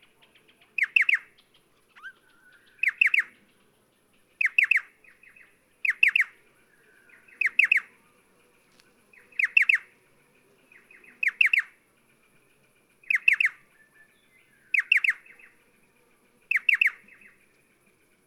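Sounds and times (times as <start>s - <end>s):
striated pardalote calling three-note phrases: 0.0s - 3.7s, 4.4s - 8.1s, 9.1s - 10.0s, 10.8s - 11.8s, 13.0s - 15.6s, 16.5s - 17.4s.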